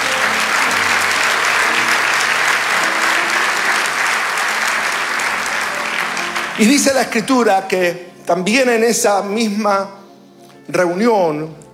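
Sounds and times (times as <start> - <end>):
audience applauding: 0.0 - 8.0
speech: 6.6 - 10.0, 10.7 - 11.6.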